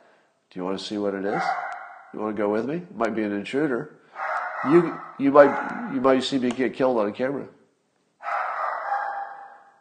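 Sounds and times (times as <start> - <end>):
speech: 0.5 - 4.0, 4.6 - 7.6
dog barking: 1.3 - 2.2, 4.1 - 6.1, 8.2 - 9.7.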